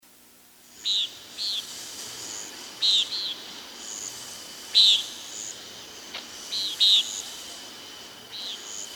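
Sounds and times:
common nighthawk giving buzzy nasal peent calls: 0:00.7 - 0:07.5.

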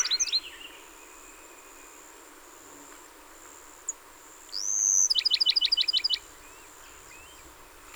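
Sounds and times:
Bachman's sparrow song of whistle and rapid high trill: 0:00.0 - 0:00.7, 0:04.5 - 0:06.2.

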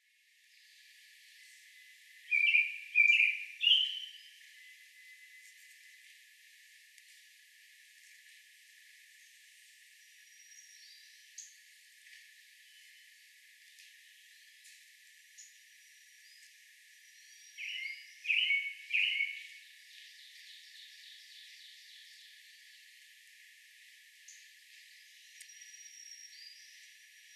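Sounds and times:
American Robin calling: 0:02.3 - 0:04.4, 0:17.2 - 0:19.6.

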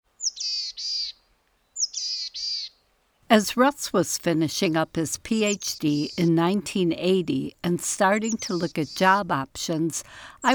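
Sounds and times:
Boreal Chickadee calls: 0:00.2 - 0:02.8, 0:04.6 - 0:09.8
speech: 0:03.3 - 0:10.5.

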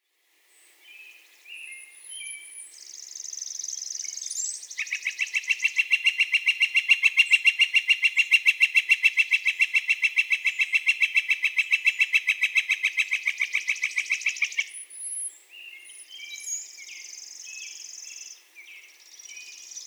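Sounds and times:
Northern Flicker long calls: 0:01.0 - 0:19.8.

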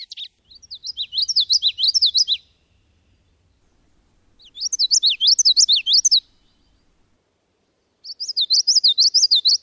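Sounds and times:
Common Yellowthroat song: 0:00.0 - 0:09.6
faint low rumble: 0:00.4 - 0:07.2.

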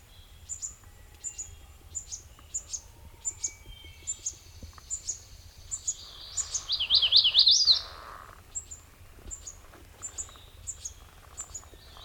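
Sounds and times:
MacGillivray's warbler song: 0:00.0 - 0:12.0.

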